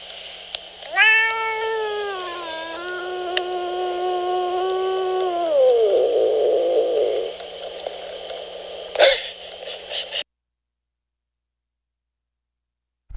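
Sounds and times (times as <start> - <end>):
soft hissing noise: 0.0 - 10.3
cat meowing: 0.8 - 7.3.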